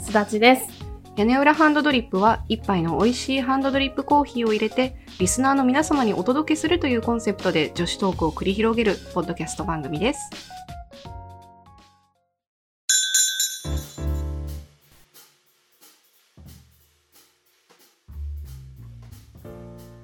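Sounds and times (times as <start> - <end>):
speech: 0.1 - 11.1
bright glassy clink: 12.9 - 14.2.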